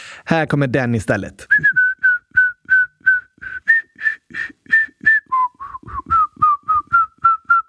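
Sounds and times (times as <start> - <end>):
speech: 0.3 - 1.8
person whistling a jingle melody: 1.5 - 7.6.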